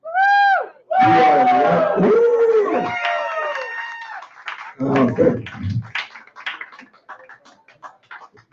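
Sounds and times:
a few people yelling and hooting: 0.1s - 4.0s.

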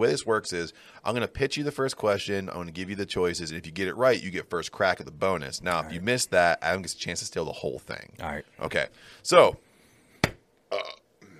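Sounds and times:
speech: 0.0s - 9.7s
loud burp after drinking hazy beers: 10.7s - 11.3s.

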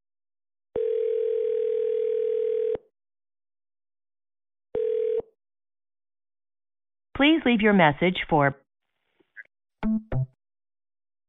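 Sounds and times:
incoming call ringing tone on a phone: 0.8s - 2.9s, 4.8s - 5.4s
speech: 7.2s - 8.6s.

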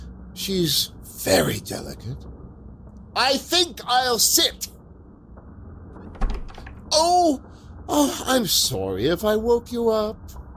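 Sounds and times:
speech: 0.4s - 2.4s, 3.2s - 4.8s, 7.0s - 10.4s
door opening: 5.9s - 7.0s
door rattling: 6.0s - 6.9s.

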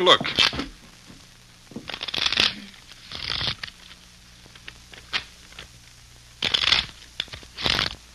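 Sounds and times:
deck of playing cards being riffle shuffled: 1.7s - 5.7s, 6.4s - 8.1s.

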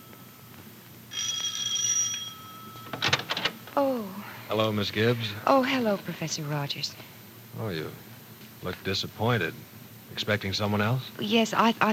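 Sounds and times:
doorbell at a home ringing: 0.0s - 3.6s
speech: 3.8s - 11.9s.

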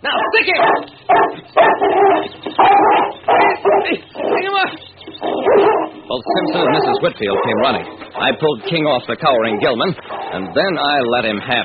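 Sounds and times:
dog barking: 0.1s - 4.5s, 5.2s - 8.4s
speech: 0.4s - 1.3s, 6.7s - 11.6s.

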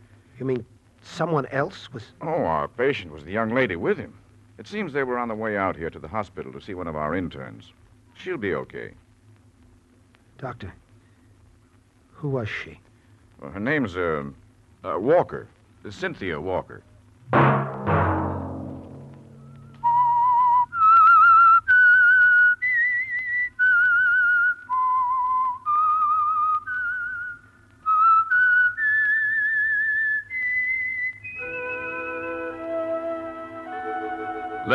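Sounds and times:
speech: 0.4s - 9.0s, 10.4s - 10.8s, 12.2s - 17.6s
lone whistler whistling a slow eerie melody: 19.4s - 34.7s.

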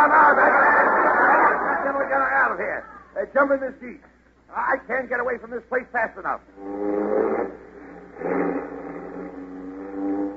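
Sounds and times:
laughter: 0.0s - 3.1s
speech: 2.5s - 7.6s
car engine revving and pulling away in the African jungle: 6.6s - 10.3s.

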